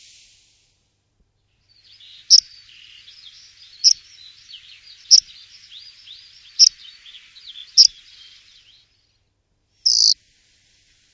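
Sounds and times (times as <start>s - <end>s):
corn bunting singing: 1.7s - 9.0s, 9.8s - 10.2s.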